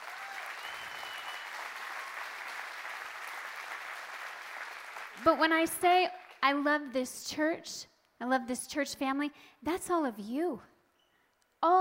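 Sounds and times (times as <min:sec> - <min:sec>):
large audience applauding volunteers: 0:00.0 - 0:05.4
speech: 0:05.2 - 0:10.7, 0:11.6 - 0:11.8.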